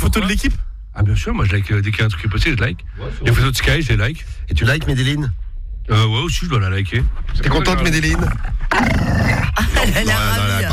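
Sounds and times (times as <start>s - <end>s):
speech: 0.1s - 10.7s
agitated dog growling: 7.8s - 9.6s.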